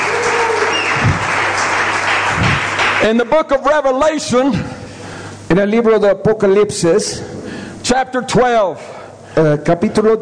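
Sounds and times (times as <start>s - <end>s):
church congregation applauding: 0.0s - 3.7s
speech: 3.0s - 4.8s, 5.5s - 10.2s.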